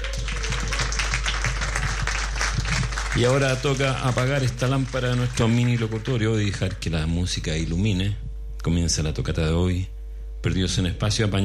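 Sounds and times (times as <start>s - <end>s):
crowd applauding: 0.0s - 6.8s
speech: 3.2s - 11.4s.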